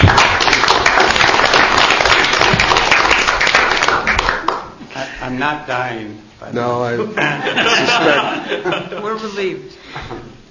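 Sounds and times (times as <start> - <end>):
audience applause: 0.0 - 4.8
speech: 5.4 - 10.4
laughter: 7.0 - 9.4.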